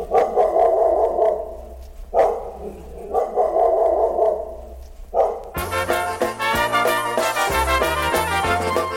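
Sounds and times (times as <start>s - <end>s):
dog barking: 0.0s - 5.6s
band music: 5.5s - 8.9s.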